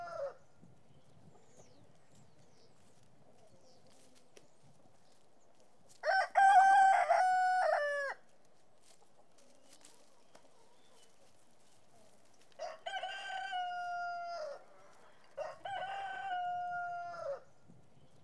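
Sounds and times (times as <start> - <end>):
rooster crowing: 6.0 - 8.2, 12.6 - 14.6, 15.4 - 17.5.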